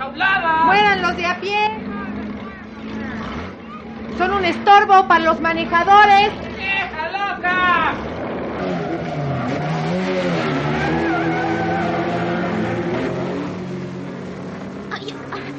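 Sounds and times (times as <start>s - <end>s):
speech: 0.0s - 2.0s, 4.1s - 8.2s
car engine revving: 0.6s - 15.5s.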